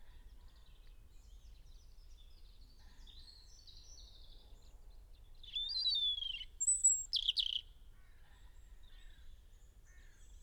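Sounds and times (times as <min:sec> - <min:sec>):
European robin singing Erithacus rubecula: 0:05.4 - 0:07.7.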